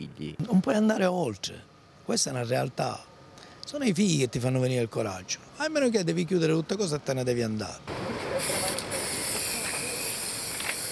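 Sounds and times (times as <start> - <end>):
speech: 0.2 - 3.1, 3.7 - 8.2
can of red spray paint hissing onto the ground: 8.3 - 10.9.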